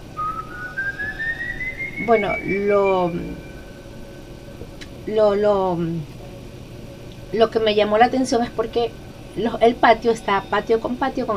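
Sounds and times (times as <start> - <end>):
human whistle gliding upward in pitch: 0.0 - 4.3
speech: 2.0 - 3.5, 5.0 - 6.2, 7.3 - 11.3.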